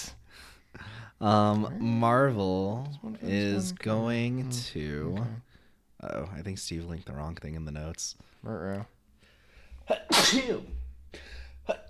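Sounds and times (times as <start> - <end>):
speech: 1.2 - 8.9, 9.9 - 11.8
person sneezing loudly: 9.9 - 11.8.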